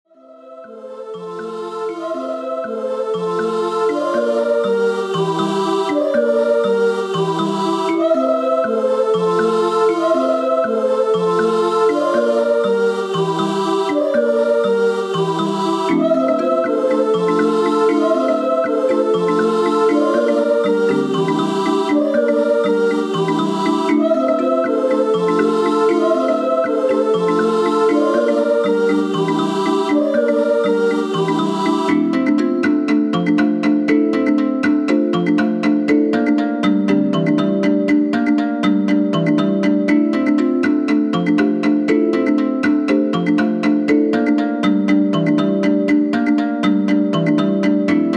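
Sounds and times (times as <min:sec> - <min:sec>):
kalimba: 0:00.3 - 0:48.1.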